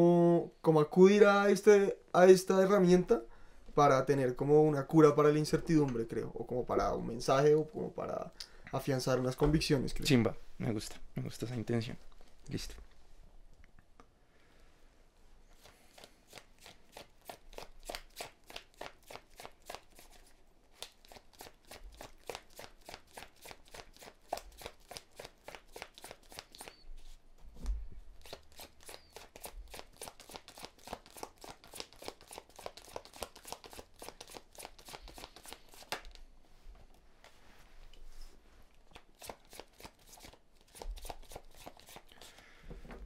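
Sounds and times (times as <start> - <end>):
speech: 0.0 - 12.8
tarot cards being shuffled and drawn: 15.6 - 27.2, 28.2 - 36.3, 38.8 - 42.4.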